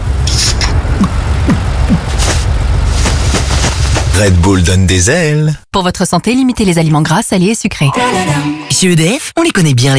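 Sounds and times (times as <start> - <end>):
idling car engines in a holiday traffic jam: 0.0 - 4.1
speech: 4.2 - 9.9.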